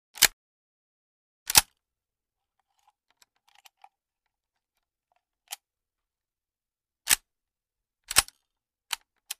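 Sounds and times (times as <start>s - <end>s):
22 Ruger rifle bolt action: 0.2s - 0.4s, 8.1s - 9.3s.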